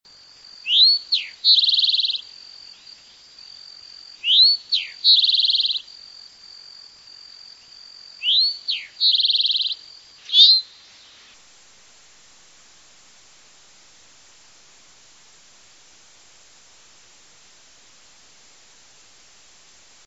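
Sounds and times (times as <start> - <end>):
Eastern Towhee calling: 0.6 - 2.3, 4.2 - 5.8, 8.2 - 11.4.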